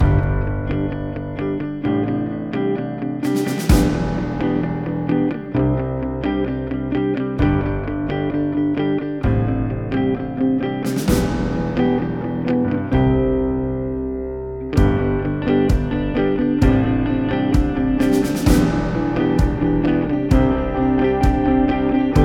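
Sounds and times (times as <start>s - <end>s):
guitar being lifted up: 0.0s - 22.2s.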